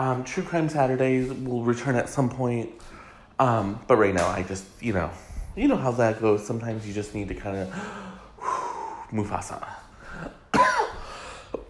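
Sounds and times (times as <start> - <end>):
speech: 0.0 - 8.1, 9.1 - 10.4
person coughing with throaty rasp: 10.2 - 11.6.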